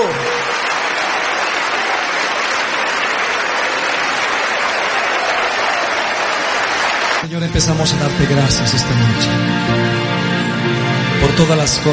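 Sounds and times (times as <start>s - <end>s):
audience clapping hands in worship: 0.0s - 7.8s
speech: 7.6s - 10.4s, 11.3s - 11.9s.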